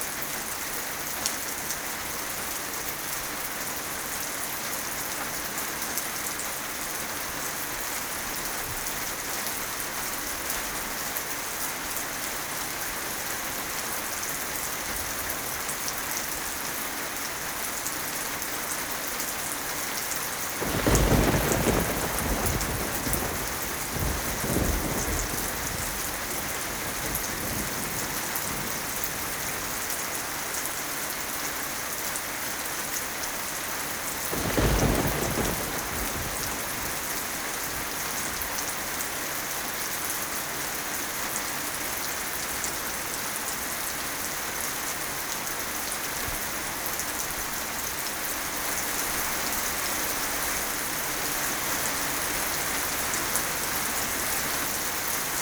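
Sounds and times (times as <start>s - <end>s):
rain: 0.0s - 55.4s
thunder: 20.5s - 30.0s, 34.3s - 38.5s.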